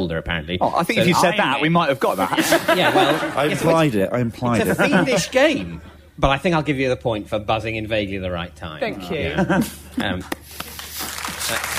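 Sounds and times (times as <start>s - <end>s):
speech: 0.0s - 10.7s, 11.5s - 11.7s
laughter: 2.1s - 5.7s, 9.0s - 10.3s
studio audience applause at a comedy panel quiz show: 10.5s - 11.7s.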